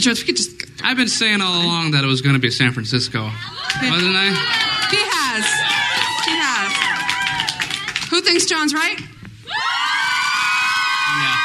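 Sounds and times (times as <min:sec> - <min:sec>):
speech: 0:00.0 - 0:05.7, 0:08.2 - 0:09.1
live audience cheering and shouting: 0:03.4 - 0:08.5, 0:09.4 - 0:11.4.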